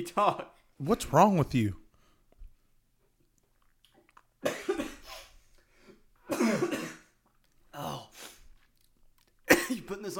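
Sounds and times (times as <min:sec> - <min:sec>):
speech: 0:00.0 - 0:01.8, 0:09.7 - 0:10.1
harsh coughing from a tickle in the throat: 0:04.4 - 0:05.3, 0:06.2 - 0:07.2, 0:09.5 - 0:10.0.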